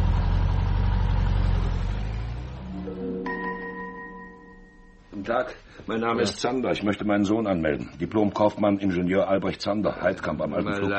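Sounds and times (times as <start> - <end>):
car engine rumbling as the car drives off: 0.0 - 3.1
speech: 5.3 - 10.9.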